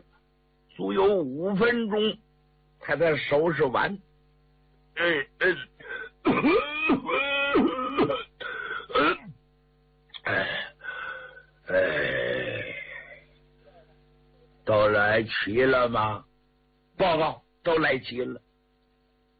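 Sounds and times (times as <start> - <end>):
speech: 0.8 - 2.2, 2.8 - 4.1, 5.0 - 8.2, 14.7 - 16.3, 17.0 - 18.4
performer's voice imitating an old man coughing and throat clearing: 5.0 - 9.4, 10.2 - 10.8.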